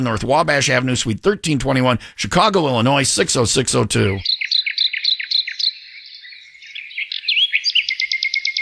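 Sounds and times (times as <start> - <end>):
speech: 0.0 - 4.4
bird singing a bright rapid song of chirps and warbles: 4.0 - 8.6.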